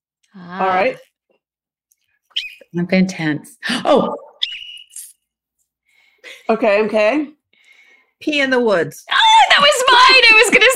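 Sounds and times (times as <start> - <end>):
speech: 0.4 - 1.1, 2.7 - 4.2, 6.5 - 7.4, 8.2 - 10.7
sharp shrill whistle blast during game show round: 4.4 - 5.1.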